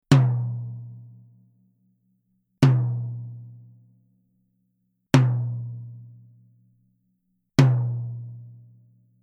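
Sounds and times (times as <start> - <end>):
medium tom drum with resonant glass head: 0.1 - 0.9, 2.6 - 3.2, 7.6 - 8.1.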